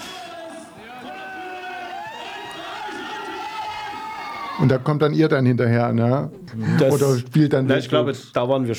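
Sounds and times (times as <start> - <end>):
concert crowd cheering and shouting in archival live recording: 0.0 - 5.2
speech: 4.6 - 8.7.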